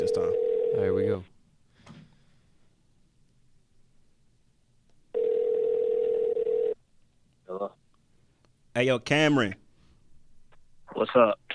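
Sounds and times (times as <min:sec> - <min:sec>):
ringback tone from an outgoing phone call: 0:00.0 - 0:00.9, 0:05.1 - 0:06.8
speech: 0:00.2 - 0:01.3, 0:08.8 - 0:09.6, 0:11.0 - 0:11.5.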